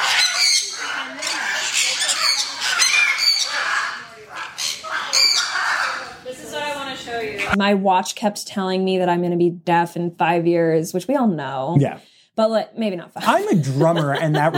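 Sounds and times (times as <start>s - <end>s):
many birds screeching and squawking in a barn: 0.0s - 6.3s
speech: 7.5s - 14.5s
laughter: 13.2s - 14.5s.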